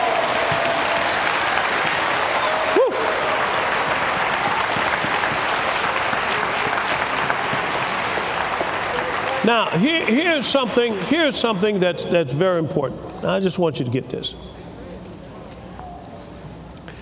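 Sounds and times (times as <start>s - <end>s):
congregation clapping and applauding: 0.0s - 12.0s
speech: 9.5s - 14.6s.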